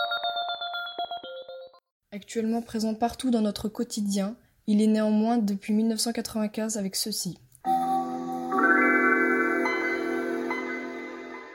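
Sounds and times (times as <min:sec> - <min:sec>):
speech: 0:02.2 - 0:07.4
computer operating system startup chime, layered synthesized tones: 0:07.7 - 0:11.5.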